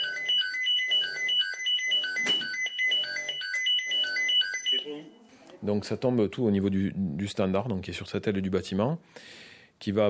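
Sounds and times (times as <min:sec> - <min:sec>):
fire station electronic alert tones for emergency call-out: 0:00.0 - 0:05.2
speech: 0:05.6 - 0:10.0.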